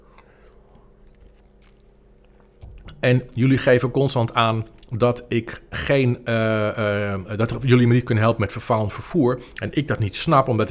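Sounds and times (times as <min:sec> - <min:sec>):
low hum: 0:00.0 - 0:10.7
sipping water and swallowing: 0:00.1 - 0:03.0
speech: 0:03.0 - 0:10.7.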